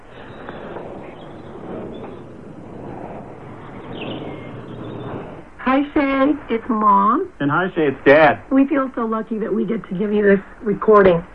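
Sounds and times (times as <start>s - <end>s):
morning chorus of birds chirping and singing: 0.0s - 5.5s
speech: 5.7s - 11.3s.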